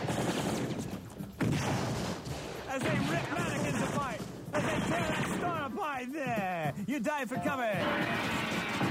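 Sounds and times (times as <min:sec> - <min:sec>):
heavy gunfire sound effect from a shootout inside a store: 0:00.0 - 0:05.6, 0:07.8 - 0:08.8
speech: 0:05.9 - 0:08.6.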